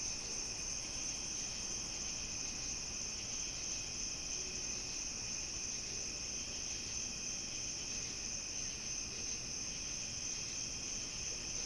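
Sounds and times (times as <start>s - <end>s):
crickets chirping on a summer night: 0.0s - 11.6s.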